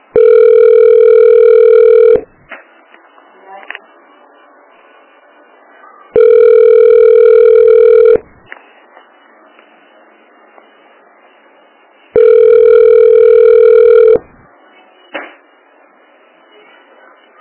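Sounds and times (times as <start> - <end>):
telephone ringback tone while a call is placed: 0.1 - 2.3, 6.2 - 8.2, 12.2 - 14.3.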